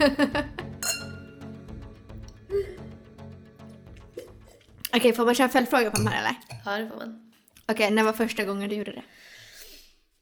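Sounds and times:
speech: 0.0 - 0.6, 5.0 - 9.3
laughter: 0.0 - 0.8
glasses clinking in a toast: 0.8 - 1.4, 5.9 - 6.6.

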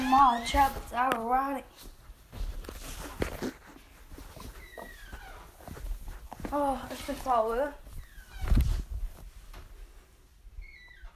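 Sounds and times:
door creaking with high drawn-out squeals: 0.0 - 0.9, 4.5 - 5.6, 7.9 - 8.9, 10.5 - 11.1
speech: 0.2 - 1.9, 6.5 - 7.8.

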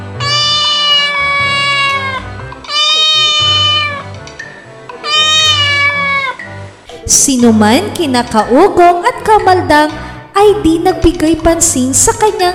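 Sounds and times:
cat meowing: 0.2 - 4.1, 5.0 - 6.5
speech: 7.3 - 12.5.

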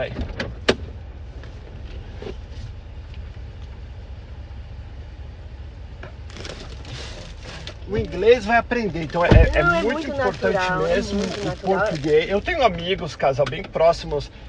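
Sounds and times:
speech: 0.0 - 0.3, 8.0 - 14.4
low engine-like rumble: 0.0 - 14.4
sharp clunk of getting out of a car: 9.2 - 9.9.

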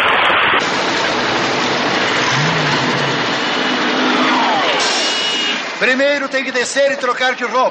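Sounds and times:
heavy storm rain: 0.0 - 5.8
DeLorean car engine humming low: 1.7 - 4.5
speech: 5.8 - 7.6.

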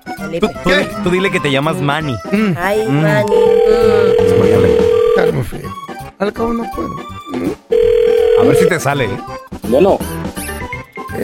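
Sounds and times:
speech: 0.2 - 7.8, 8.4 - 10.2
steady electronic telephone tone during a call: 3.2 - 5.3, 7.7 - 8.8.

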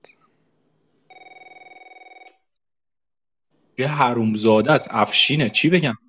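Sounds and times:
telephone bell ringing: 1.1 - 2.3, 5.1 - 5.8
speech: 3.8 - 6.0
voices: 3.8 - 6.0.

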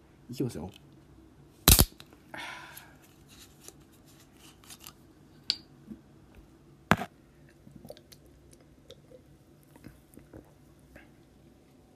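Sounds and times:
speech: 0.3 - 0.9
soda can cracked open with snap and fizzy hiss: 1.7 - 2.0
person sipping and gulping canned soda: 6.9 - 10.5.

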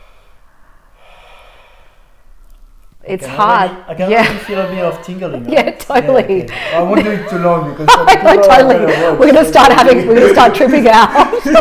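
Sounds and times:
deep inhaling during a breathwork exercise: 0.0 - 2.4
speech: 3.1 - 11.5
laughter: 4.1 - 11.5.

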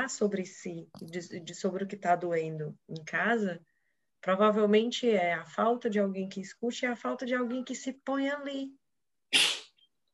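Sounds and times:
speech: 0.0 - 9.6
faint tiny sniff: 9.3 - 9.8
sneeze: 9.3 - 9.8.

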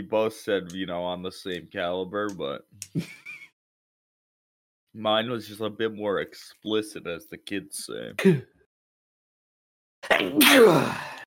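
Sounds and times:
speech: 0.0 - 3.2, 5.0 - 8.5, 10.2 - 11.1
person sneezing: 10.0 - 11.2.

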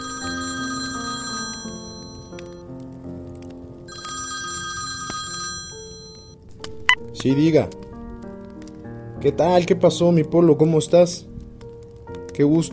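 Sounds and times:
telephone ringing in a quiet family home: 0.0 - 2.6, 3.9 - 6.4
speech: 7.2 - 7.8, 9.2 - 11.3, 12.4 - 12.7.

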